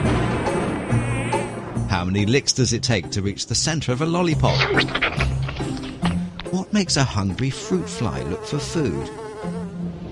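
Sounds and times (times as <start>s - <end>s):
mosquito buzzing in a thin whining drone: 0.4s - 1.8s, 7.4s - 9.9s
speech: 2.0s - 5.3s, 6.7s - 9.2s.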